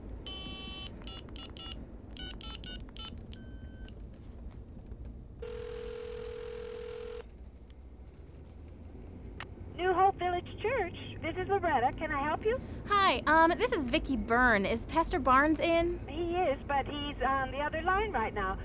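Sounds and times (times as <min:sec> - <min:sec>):
phone keypad beeps: 0:00.3 - 0:03.9
phone ring tone: 0:00.3 - 0:03.9, 0:05.4 - 0:07.2
speech: 0:10.2 - 0:18.6.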